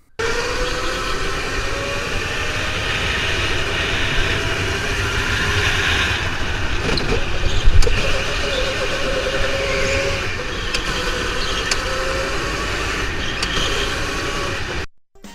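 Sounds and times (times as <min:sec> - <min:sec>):
race car engines starting and revving: 0:00.0 - 0:14.9.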